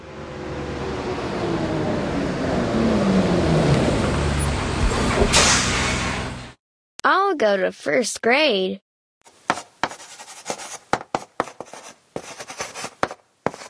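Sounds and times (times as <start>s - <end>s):
bus engine rumbling: 0.0s - 6.6s
bus air brakes hissing: 5.3s - 6.3s
speech: 7.3s - 8.8s.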